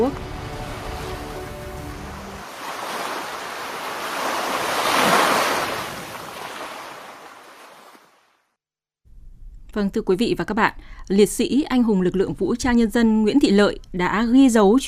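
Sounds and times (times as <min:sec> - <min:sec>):
speech: 0:00.0 - 0:00.3, 0:09.8 - 0:14.8
ocean waves washing ashore: 0:00.0 - 0:08.4.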